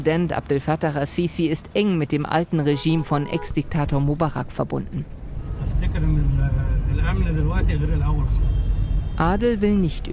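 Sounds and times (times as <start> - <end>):
speech: 0.0 - 5.2, 5.8 - 8.6, 9.2 - 10.1
car engine rumble driving through city streets: 3.3 - 10.1.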